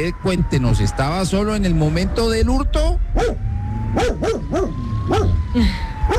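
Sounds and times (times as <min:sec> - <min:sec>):
speech: 0:00.0 - 0:06.1
low rumbling background: 0:00.7 - 0:06.1
dog barking: 0:03.2 - 0:03.4, 0:04.0 - 0:05.4.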